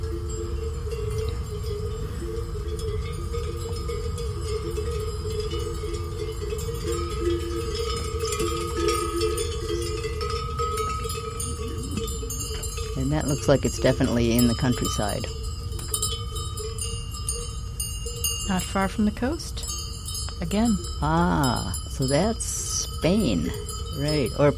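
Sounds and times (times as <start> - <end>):
metallic bells clanking on grazing goats: 0.0 - 24.5
steady outdoor hum in the countryside not far from the coast: 0.0 - 24.5
speech: 13.2 - 15.4, 18.5 - 19.6, 20.4 - 24.5.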